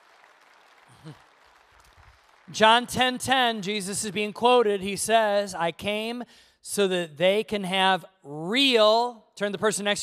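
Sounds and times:
audience applause: 0.0s - 2.9s
voice rising out of the crowd: 0.8s - 1.3s
speech: 1.0s - 1.3s, 2.5s - 10.0s.

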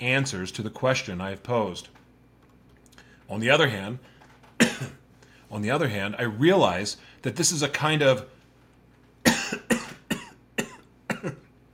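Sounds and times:
speech: 0.0s - 2.0s, 3.3s - 8.4s
dry coughs: 4.6s - 5.0s, 9.2s - 11.5s.

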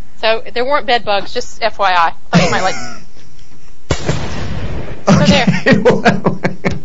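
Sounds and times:
speech: 0.2s - 3.0s, 5.2s - 6.5s
laughter: 2.3s - 3.0s, 5.1s - 6.8s
gunshot sound effect: 3.9s - 5.4s.

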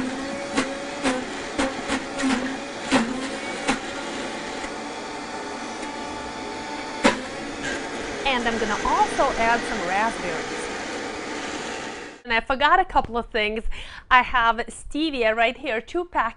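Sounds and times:
blender blending a beet: 0.0s - 12.2s
speech: 8.3s - 10.6s, 12.3s - 16.3s.

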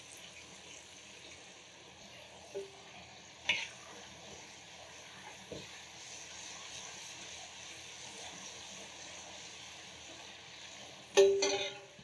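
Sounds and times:
food frying in hot oil: 0.0s - 12.0s
utensil clinking and scraping against the pan: 11.2s - 12.0s.

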